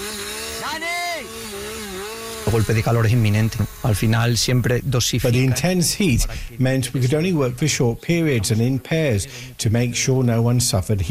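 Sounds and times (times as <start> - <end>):
chainsaw engine whining and revving while cutting: 0.0 - 6.5
speech: 2.5 - 11.0.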